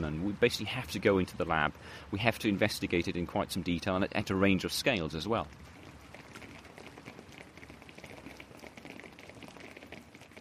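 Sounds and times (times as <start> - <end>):
speech: 0.1 - 5.8
rainfall simulator spraying artificial rain indoors on a surface: 4.6 - 10.4.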